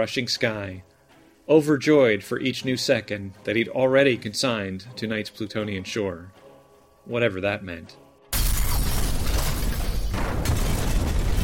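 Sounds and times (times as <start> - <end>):
speech: 0.0 - 0.9, 1.5 - 6.4, 7.0 - 8.0
booming explosions of train cars crashing: 8.4 - 11.4.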